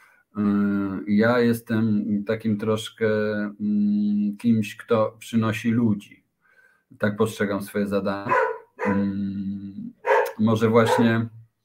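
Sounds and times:
speech: 0.4s - 6.2s, 6.9s - 9.5s, 10.4s - 11.4s
dog barking loudly: 8.2s - 9.2s, 10.0s - 11.2s.

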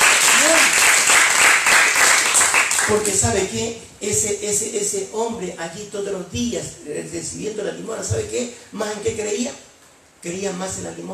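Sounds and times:
audience applauding: 0.0s - 3.2s
speech: 2.9s - 11.1s.

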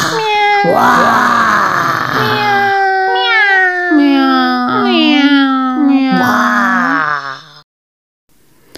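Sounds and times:
several cats yowling and wailing: 0.1s - 7.4s
speech: 0.6s - 1.3s.

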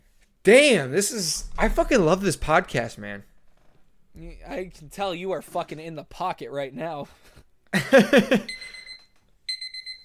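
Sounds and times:
speech: 0.4s - 3.3s, 4.2s - 8.8s
timer alarm beeping: 8.5s - 10.0s.

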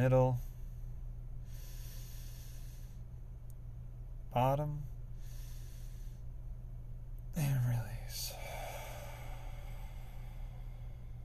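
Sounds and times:
speech: 0.0s - 0.5s, 4.4s - 4.9s
low constant hum: 0.0s - 11.2s
slow deep inhale during a guided breathing exercise: 0.4s - 3.1s, 5.1s - 6.3s, 8.1s - 11.2s.

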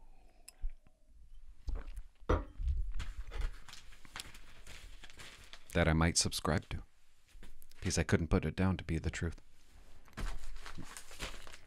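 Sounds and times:
local newspaper pages rustling as they are handled: 3.1s - 5.8s, 10.1s - 11.6s
speech: 5.8s - 6.9s, 7.8s - 9.5s.

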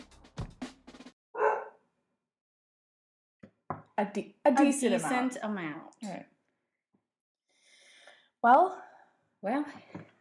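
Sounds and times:
dog barking: 1.4s - 1.8s
speech: 4.0s - 6.3s, 8.4s - 8.8s, 9.4s - 10.1s.

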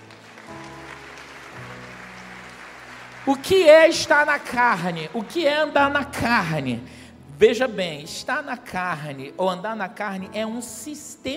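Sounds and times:
congregation applauding: 0.0s - 6.6s
speech: 3.3s - 11.3s.

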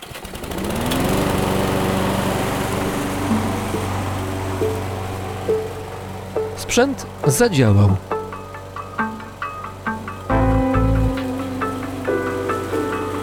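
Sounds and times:
small lawn mower engine starting and running: 0.0s - 13.2s
speech: 6.7s - 8.1s.

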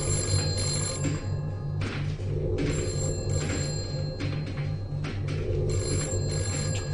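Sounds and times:
telephone bell ringing: 0.0s - 1.5s, 2.6s - 5.0s, 5.6s - 6.9s.

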